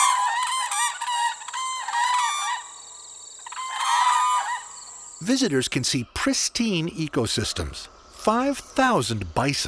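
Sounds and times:
whooping cranes trumpeting bugling calls: 0.0 - 5.4
speech: 5.2 - 9.6.

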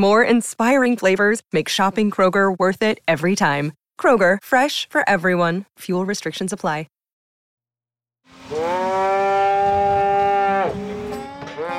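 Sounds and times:
speech: 0.0 - 6.9
cow mooing at a fall cattle roundup on a ranch: 8.4 - 11.7.

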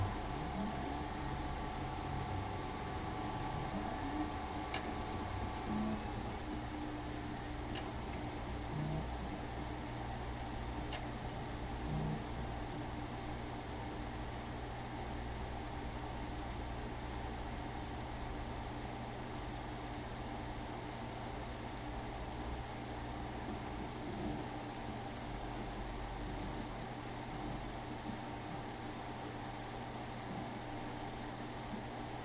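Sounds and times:
one-terabyte hard drives spinning up inside a storage unit booting: 0.0 - 29.4
steady external fan hum: 0.0 - 32.2
hard drive heads clicking: 4.6 - 6.6, 7.6 - 8.3.

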